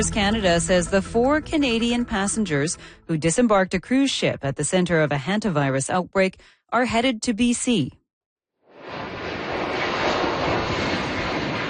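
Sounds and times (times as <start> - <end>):
speech: 0.0 - 8.0
plane taking off from the Canary Islands: 8.7 - 11.6.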